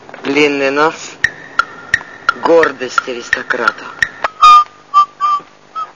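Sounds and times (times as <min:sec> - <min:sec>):
speech: 0:00.3 - 0:01.1, 0:02.4 - 0:04.1
person whistling a short halting tune: 0:04.3 - 0:05.9.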